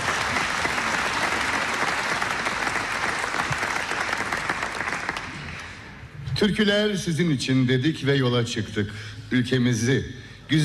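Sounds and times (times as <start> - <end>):
audience applause at a folk song concert: 0.0 - 6.0
speech: 6.4 - 10.6.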